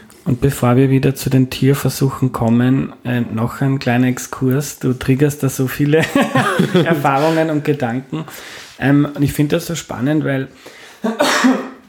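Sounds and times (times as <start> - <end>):
speech: 0.2 - 11.7
laughter: 6.0 - 8.3
sneeze: 11.0 - 11.8.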